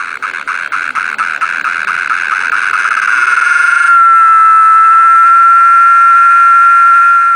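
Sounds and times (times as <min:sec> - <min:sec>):
cicadas singing: 0:00.0 - 0:07.3.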